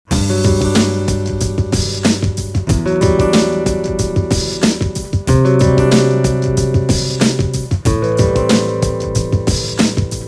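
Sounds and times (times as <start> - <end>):
acoustic groove: 0.1 - 10.2.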